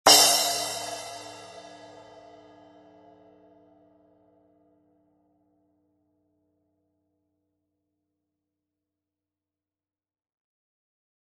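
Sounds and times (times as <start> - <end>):
12in Custom splash cymbal: 0.1 - 2.1.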